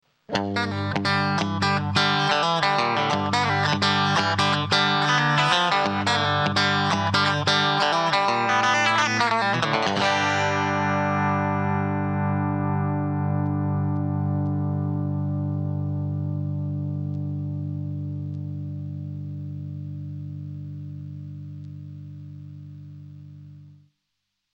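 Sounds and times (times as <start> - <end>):
guitar through compressor pedal: 0.0 - 23.9.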